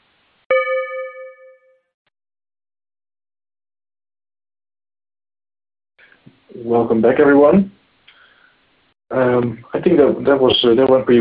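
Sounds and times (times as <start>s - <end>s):
meditation chime: 0.5s - 1.8s
speech: 6.0s - 7.7s, 9.1s - 11.1s.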